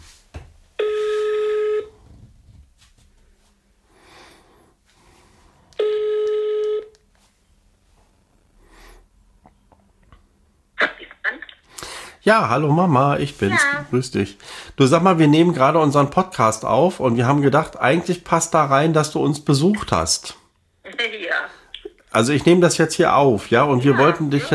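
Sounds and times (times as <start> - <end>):
telephone ringing tone on speakerphone: 0.8 - 2.0, 5.8 - 7.0
telephone on speakerphone dialing tones: 5.8 - 7.0
speech: 12.3 - 20.4, 22.1 - 24.5.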